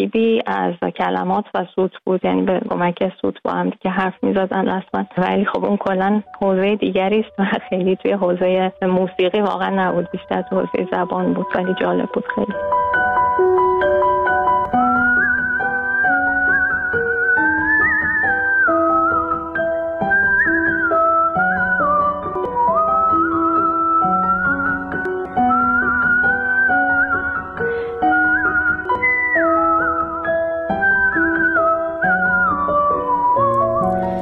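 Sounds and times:
speech: 0.0s - 13.5s
steady instrumental accompaniment: 10.0s - 34.2s
clear sustained whistled melody by a musician: 12.6s - 34.2s.

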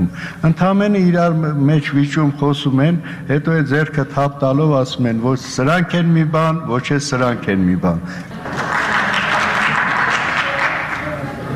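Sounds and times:
speech: 0.1s - 8.8s
majority and opposition members applauding in a parliament chamber: 8.4s - 11.5s.

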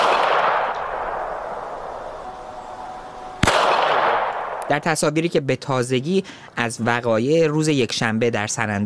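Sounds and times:
single gunshot fired at protesters: 0.0s - 1.4s, 3.4s - 4.8s
street rumble: 0.0s - 8.3s
outdoor crowd noise: 0.0s - 8.8s
speech: 4.7s - 8.8s.

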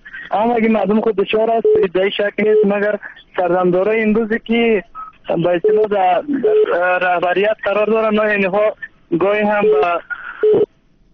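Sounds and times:
speech: 0.4s - 10.6s
telephone line tone after a call is cut off: 5.6s - 6.8s, 9.5s - 10.7s.

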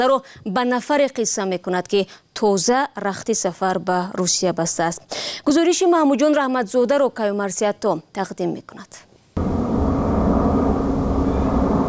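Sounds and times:
speech: 0.0s - 9.5s
airplane engine drone carrying migrant passengers to Tajikistan: 9.4s - 11.8s.

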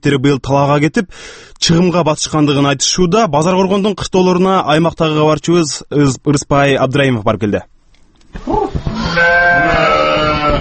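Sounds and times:
speech: 0.0s - 7.7s, 8.3s - 10.5s
sheep and goats bleating in a village farmyard: 8.4s - 10.5s.

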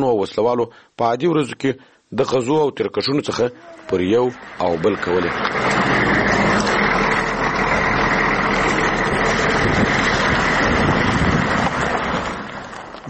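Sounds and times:
speech: 0.0s - 6.1s
private car engine rumbling on an unpaved dirt road: 3.4s - 13.0s
unpaved dirt road noise: 3.4s - 13.0s
wind buffeting: 3.8s - 13.0s.

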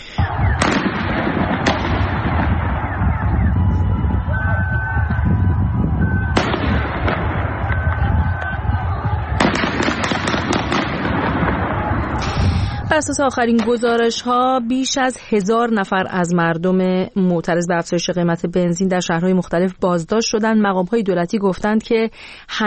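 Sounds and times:
sharp gunshots in city streets: 0.0s - 3.5s, 6.3s - 12.8s
constant roar of outdoor street noise: 0.0s - 17.4s
speech: 13.0s - 22.6s.

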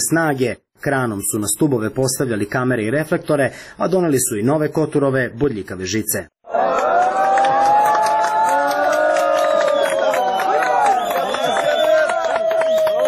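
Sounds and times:
speech: 0.1s - 7.1s
crowd of refugees applauding and ironically shouting bravo: 6.5s - 13.0s.

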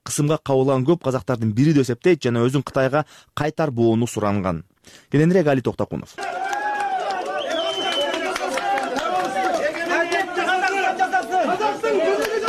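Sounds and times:
speech: 0.1s - 6.4s
crowd noisily greeting a woman leaving a courtroom: 7.4s - 12.4s.

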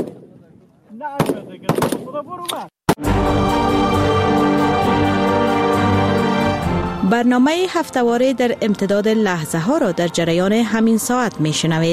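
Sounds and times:
gunshots at a shooting range in Afghanistan during target practice: 0.0s - 0.4s, 1.2s - 2.2s
speech: 1.0s - 4.2s, 7.1s - 11.9s
steady music: 3.0s - 11.9s.

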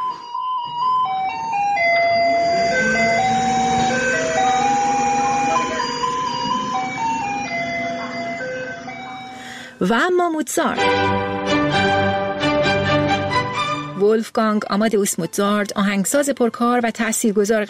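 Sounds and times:
garbage truck playing a tinny electronic melody jingle: 0.0s - 9.5s, 10.8s - 14.2s
speech: 9.8s - 11.2s, 14.0s - 17.6s.

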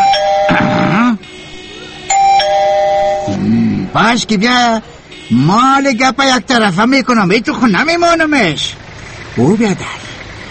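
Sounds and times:
two-note ding-dong doorbell chime at a house door: 0.0s - 0.7s, 2.1s - 3.4s
speech: 3.9s - 8.8s, 9.4s - 10.0s.

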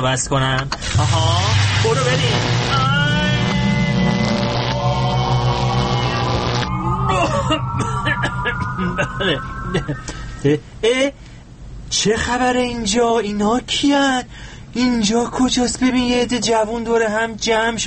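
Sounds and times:
speech: 0.0s - 3.1s, 7.5s - 8.1s, 8.8s - 11.2s, 11.9s - 17.8s
sci-fi time machine effect with layered electronic tones: 0.9s - 10.8s.

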